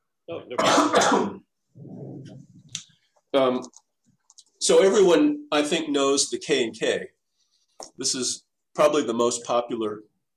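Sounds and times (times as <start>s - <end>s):
speech: 0.3s - 2.4s, 3.3s - 3.8s, 4.6s - 7.2s, 7.8s - 10.1s
person clearing throat: 0.5s - 1.5s.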